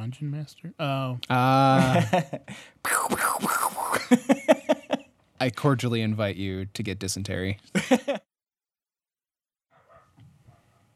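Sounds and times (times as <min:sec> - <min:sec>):
speech: 0:00.1 - 0:04.8, 0:05.4 - 0:08.2
laughter: 0:01.5 - 0:02.5, 0:04.0 - 0:05.1, 0:07.8 - 0:08.2
dog barking sharply: 0:09.7 - 0:10.9.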